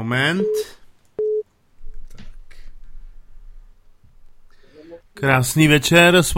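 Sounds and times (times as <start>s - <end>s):
speech: 0.1s - 0.8s, 5.2s - 6.3s
telephone line tone as a call connects: 1.2s - 1.4s.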